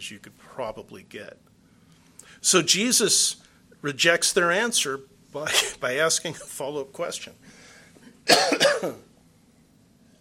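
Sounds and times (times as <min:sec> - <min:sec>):
speech: 0:00.0 - 0:01.5, 0:02.4 - 0:07.6, 0:08.3 - 0:09.1
person coughing: 0:05.5 - 0:05.8, 0:08.2 - 0:09.1.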